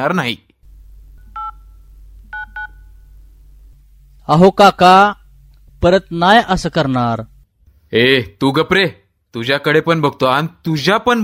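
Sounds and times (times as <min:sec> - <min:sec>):
speech: 0:00.0 - 0:00.5, 0:04.3 - 0:05.2, 0:05.8 - 0:07.3, 0:07.9 - 0:11.2
low hum: 0:00.6 - 0:07.8
telephone keypad dialing tones as a call to the police is placed: 0:01.4 - 0:01.6, 0:02.3 - 0:02.9.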